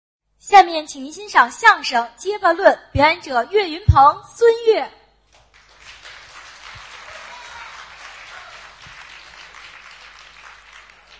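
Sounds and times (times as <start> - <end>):
speech: 0.4 - 5.0
audience applause: 5.4 - 11.1.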